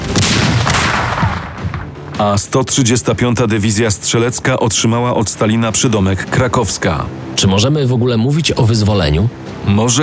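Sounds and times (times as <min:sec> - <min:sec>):
artillery salute of cannons firing salvos on Red Square in Moscow: 0:00.0 - 0:02.2
speech: 0:02.2 - 0:10.0.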